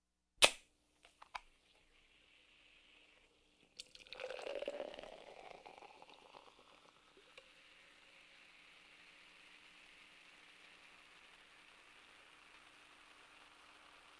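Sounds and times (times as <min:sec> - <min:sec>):
soda can opening: 0:00.4 - 0:01.5, 0:03.8 - 0:07.5.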